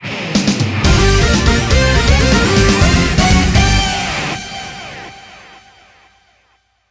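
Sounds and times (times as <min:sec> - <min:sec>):
win jingle: 0:00.9 - 0:04.9.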